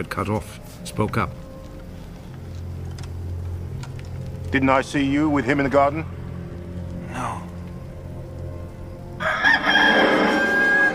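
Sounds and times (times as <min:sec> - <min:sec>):
speech: 0:00.0 - 0:01.4, 0:04.5 - 0:06.2
rooster crowing: 0:09.2 - 0:10.9.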